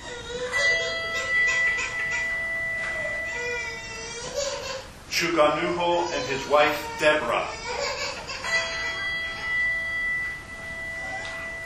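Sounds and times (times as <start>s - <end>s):
church bell tolling: 0.5s - 4.3s, 8.4s - 11.6s
speech: 5.2s - 7.6s.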